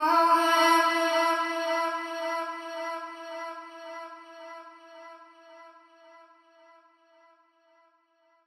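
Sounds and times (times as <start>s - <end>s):
vocals at 110 bpm in F: 0.0s - 6.4s.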